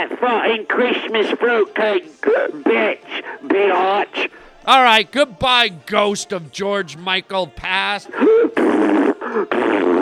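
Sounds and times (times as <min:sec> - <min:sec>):
speech: 0:00.1 - 0:10.0
loud buzzing fart: 0:08.6 - 0:10.0.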